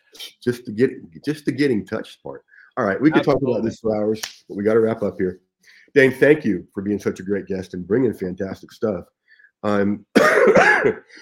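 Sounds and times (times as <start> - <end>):
speech: 0.1 - 11.2
rough cough like throat clearing: 10.1 - 11.2.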